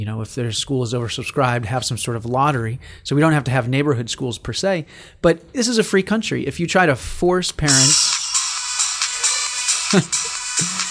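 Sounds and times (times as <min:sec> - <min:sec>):
speech: 0:00.0 - 0:08.1, 0:09.9 - 0:10.2
phone ringtone used as a signal bell: 0:07.7 - 0:10.8.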